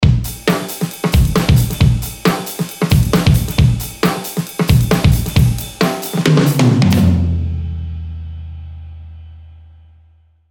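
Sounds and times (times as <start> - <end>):
drum pattern: 0.0 - 7.4.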